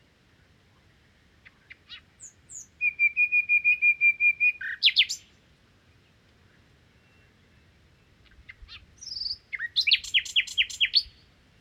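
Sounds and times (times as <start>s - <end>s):
common nightingale singing in the Crau in Bouches-du-Rhône France: 1.4s - 5.4s, 6.9s - 11.3s.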